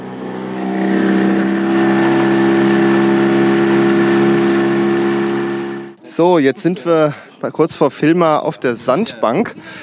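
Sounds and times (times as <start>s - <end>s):
motorboat engine throttling up: 0.0s - 6.0s
speech: 6.4s - 9.8s.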